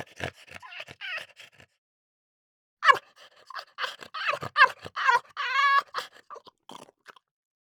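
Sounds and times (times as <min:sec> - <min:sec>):
French Bulldog panting: 0:00.0 - 0:01.7, 0:02.9 - 0:06.3
French Bulldog giving strained whiny yelps: 0:00.6 - 0:01.4, 0:02.8 - 0:06.4.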